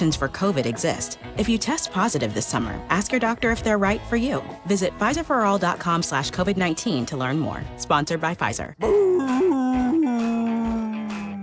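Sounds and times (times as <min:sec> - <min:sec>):
speech: 0:00.0 - 0:09.4
dog howling: 0:08.8 - 0:11.4.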